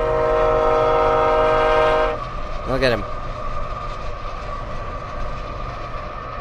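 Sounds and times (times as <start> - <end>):
freight train air horn blaring: 0.0 - 2.3
rumble of freight rail cars rolling past: 0.0 - 6.4
speech: 2.8 - 3.2.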